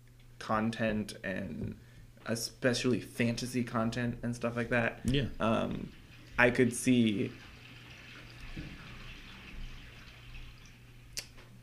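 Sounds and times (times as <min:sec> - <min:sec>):
speech: 0:00.5 - 0:07.5
toilet flushing upstairs: 0:05.4 - 0:11.2.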